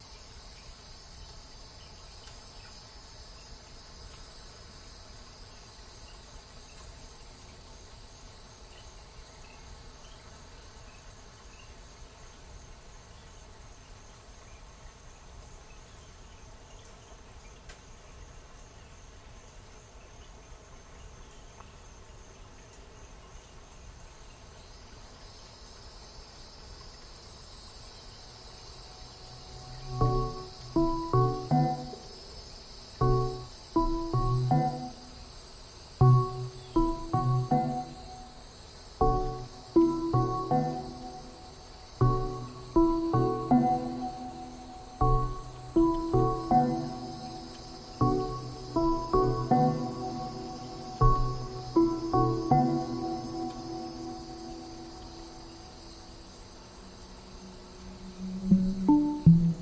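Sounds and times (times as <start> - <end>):
cicadas: 0.0 - 59.6.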